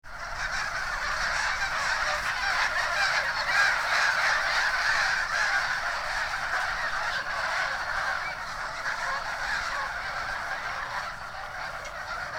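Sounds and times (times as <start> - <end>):
flock of birds honking overhead: 0.1 - 12.3.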